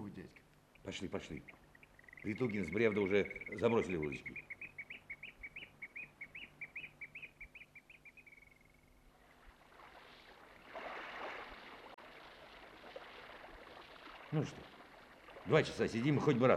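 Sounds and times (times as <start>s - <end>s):
nightingale singing: 0.6s - 9.0s
speech: 0.8s - 1.6s, 2.2s - 4.5s, 14.3s - 14.7s, 15.4s - 16.5s
broad rushing splashing water: 9.1s - 16.5s.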